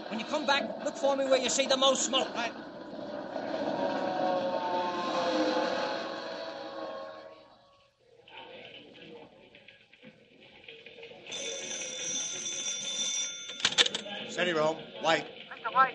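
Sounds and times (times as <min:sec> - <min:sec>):
busy rumbling noise: 0:00.0 - 0:10.9
speech: 0:00.1 - 0:02.7, 0:14.6 - 0:15.3
telephone bell ringing with a metallic jangle: 0:11.3 - 0:14.0.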